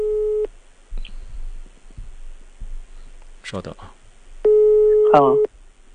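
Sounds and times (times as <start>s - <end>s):
telephone busy tone on a call not getting through: 0.0s - 0.5s, 4.5s - 5.5s
speech: 3.5s - 4.0s, 5.1s - 5.5s.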